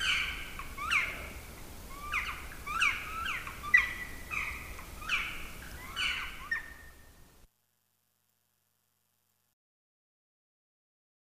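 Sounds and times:
Black woodpecker calling: 0.0 - 7.2.

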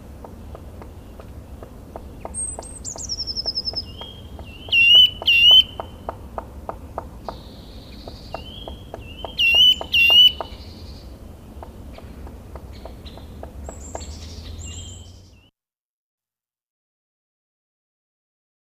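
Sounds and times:
steady faint ticking: 0.0 - 10.6, 11.6 - 14.2
black woodpecker calls: 0.0 - 15.5.

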